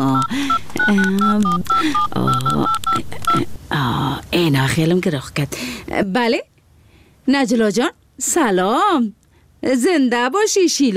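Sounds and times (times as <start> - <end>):
touch-tone beeps of a telephone number dialed on a keypad: 0.0 - 3.6
speech: 0.9 - 6.5, 7.2 - 10.9.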